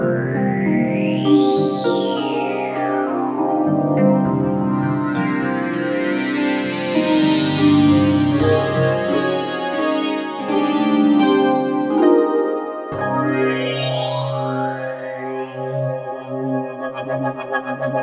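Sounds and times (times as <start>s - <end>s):
harp synth pad: 0.2s - 17.9s.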